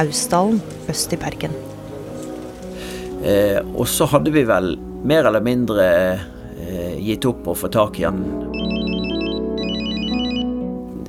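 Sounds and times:
speech: 0:00.0 - 0:01.7, 0:03.2 - 0:08.4
steady tonal background: 0:00.0 - 0:10.9
mobile phone ringtone warbling electronic trill: 0:08.5 - 0:10.6.

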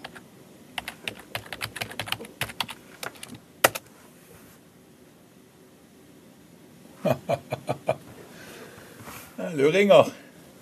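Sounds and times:
typing a web address on a computer keyboard: 0:00.0 - 0:00.2, 0:00.8 - 0:03.8
sharp key press on a computer keyboard: 0:00.8 - 0:03.9
laughter: 0:07.0 - 0:08.1
speech: 0:09.6 - 0:10.2.

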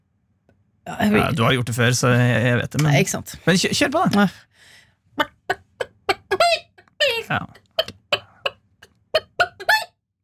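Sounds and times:
speech: 0:00.9 - 0:05.3, 0:07.3 - 0:07.6
person's voice imitating a clucking hen: 0:05.2 - 0:08.6, 0:09.2 - 0:09.9
laughter: 0:05.6 - 0:06.8, 0:09.2 - 0:09.9.

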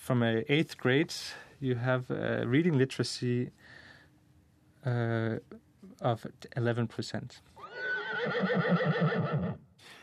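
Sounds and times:
speech: 0:00.1 - 0:03.8, 0:04.8 - 0:10.0
horse neighing with a long quavering whinny: 0:07.6 - 0:09.6.

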